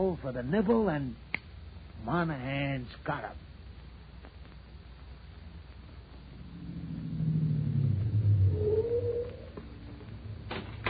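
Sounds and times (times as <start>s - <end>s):
speech: 0.0s - 1.3s, 2.0s - 3.5s
car engine rumbling as the car pulls up and stops: 6.0s - 10.8s.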